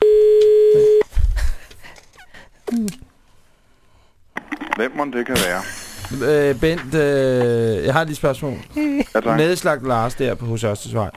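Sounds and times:
telephone dial tone during a call: 0.0s - 1.0s
speech: 4.8s - 11.1s.

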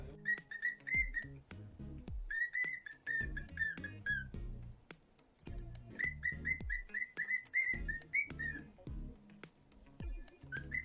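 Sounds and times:
Lutino cockatiel whistling bright notes in fast repeated runs: 0.1s - 1.4s, 2.3s - 4.3s, 6.0s - 8.7s, 10.4s - 10.8s.

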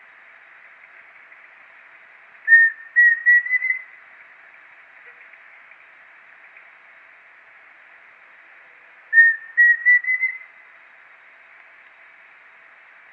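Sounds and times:
pheasant cuckoo Dromococcyx phasianellus whistled call: 2.5s - 3.9s, 9.1s - 10.5s.

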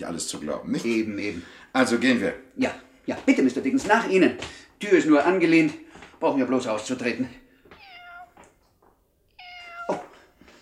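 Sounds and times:
speech: 0.0s - 7.4s
tomcat meowing: 7.7s - 8.4s, 9.3s - 10.3s.

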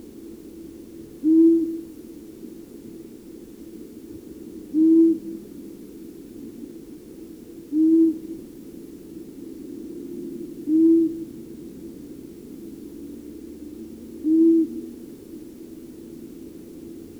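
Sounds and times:
Long-eared owl hooting: 1.2s - 1.8s, 4.7s - 5.3s, 7.7s - 8.3s, 10.7s - 11.2s, 14.2s - 14.8s.

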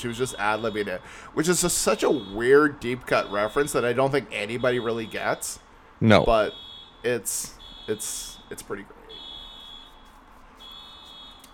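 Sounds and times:
speech: 0.0s - 9.0s
car alarm going off outside: 0.0s - 11.5s.

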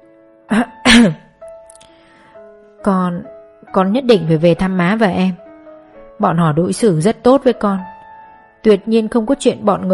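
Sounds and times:
feigned throat-clearing cough: 0.5s - 1.3s
speech: 2.8s - 5.4s, 6.2s - 7.9s, 8.6s - 9.9s.

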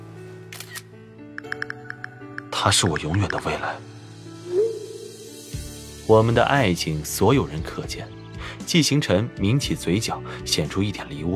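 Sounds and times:
camera shutter clicks from a car's passenger seat: 0.5s - 2.0s
speech: 2.6s - 4.0s, 6.1s - 11.3s.

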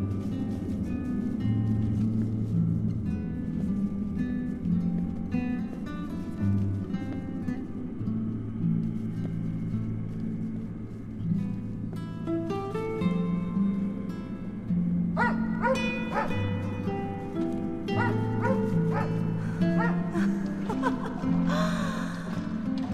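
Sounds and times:
steady low droning background: 0.0s - 22.9s
dog barking and yipping on a dark puddled road: 15.2s - 16.4s, 18.0s - 19.2s, 19.8s - 20.0s
laughter: 19.9s - 22.4s.

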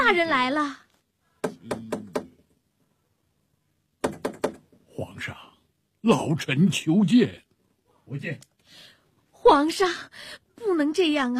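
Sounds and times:
speech: 0.1s - 0.8s, 6.0s - 7.4s, 8.1s - 8.9s, 9.5s - 11.3s
knocking on a closed door: 1.4s - 2.4s, 4.0s - 4.8s.

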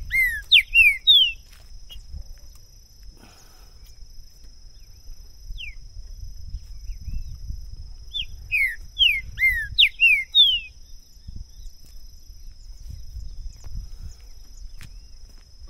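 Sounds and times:
green-winged saltator singing in the woods: 0.0s - 2.0s, 4.8s - 5.8s, 8.1s - 11.7s
faint steady hum: 0.0s - 15.6s.

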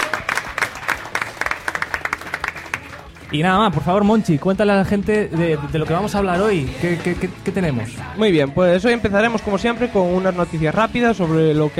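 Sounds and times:
audience applause: 0.0s - 3.4s
speech: 3.3s - 11.7s.

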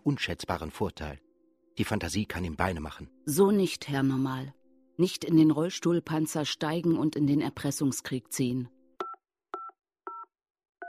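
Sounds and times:
speech: 0.0s - 1.2s, 1.8s - 8.8s
telephone number being dialled on a touch-tone keypad: 9.0s - 10.8s.

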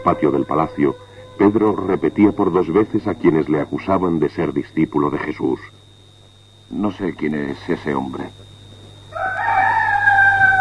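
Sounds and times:
rooster crowing: 0.0s - 3.3s, 9.1s - 10.5s
faint steady hum: 0.0s - 10.5s
speech: 0.1s - 5.8s, 6.7s - 8.5s.

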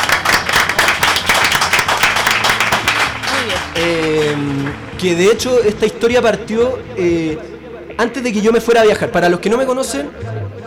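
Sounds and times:
audience applause at a launch event: 0.0s - 5.2s
speech: 3.8s - 10.4s.

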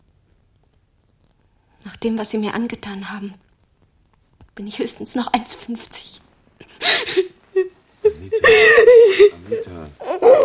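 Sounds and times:
speech: 1.9s - 3.5s, 4.6s - 6.2s
woman crying and whimpering in a drama scene: 6.7s - 10.4s.

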